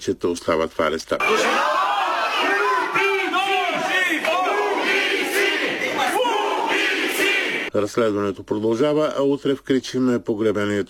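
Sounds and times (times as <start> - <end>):
speech: 0.0 - 1.9, 7.7 - 10.8
dense crowd of protesters shouting together: 1.2 - 7.7
protesters cheering and applauding after a court ruling: 1.2 - 7.7.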